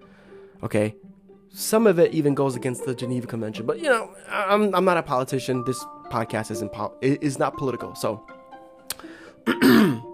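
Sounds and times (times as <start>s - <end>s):
speech: 0.6s - 8.4s
raspy throat clearing: 9.5s - 10.1s.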